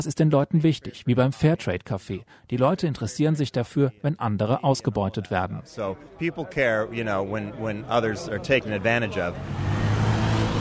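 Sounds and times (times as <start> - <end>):
speech: 0.0 - 9.8
cars pulling away after a street protest: 7.6 - 10.5.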